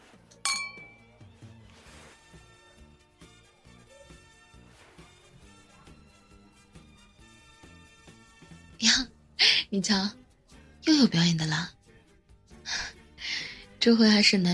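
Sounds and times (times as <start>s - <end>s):
soft music: 0.0s - 14.5s
two glasses clinking in a toast: 0.4s - 1.1s
speech: 9.7s - 10.2s, 11.0s - 11.8s, 13.8s - 14.5s.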